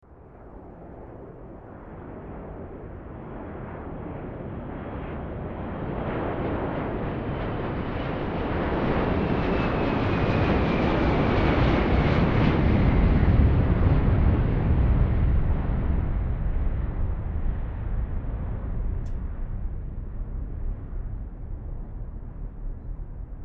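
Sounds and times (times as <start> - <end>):
jet aircraft noise: 0.6 - 23.4.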